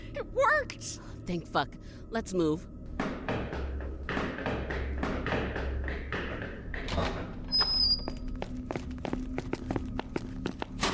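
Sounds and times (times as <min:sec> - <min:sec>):
speech: 0:00.1 - 0:02.7
quick footsteps: 0:03.3 - 0:10.8.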